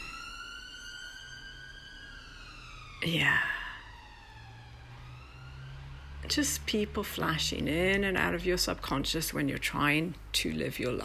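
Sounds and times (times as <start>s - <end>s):
emergency vehicle siren wailing: 0.0s - 9.1s
speech: 3.0s - 3.6s, 6.3s - 11.0s.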